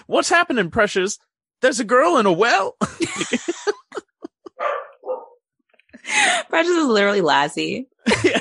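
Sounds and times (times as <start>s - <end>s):
speech: 0.1s - 4.0s, 6.0s - 8.3s
laughter: 2.8s - 4.6s, 8.0s - 8.3s
small puppy barking: 4.6s - 5.4s.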